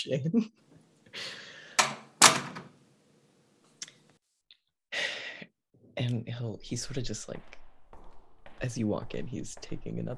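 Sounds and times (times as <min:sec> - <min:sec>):
speech: 0:00.0 - 0:01.4, 0:06.0 - 0:07.6, 0:08.6 - 0:10.1
bathroom door swinging shut with solid thuds: 0:01.8 - 0:02.7.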